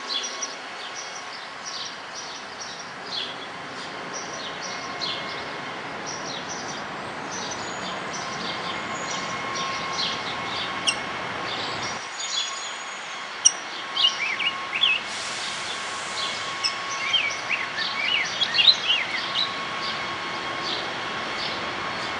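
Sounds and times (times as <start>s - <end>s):
Rose-breasted Grosbeak singing: 0.0s - 15.1s, 15.7s - 22.1s.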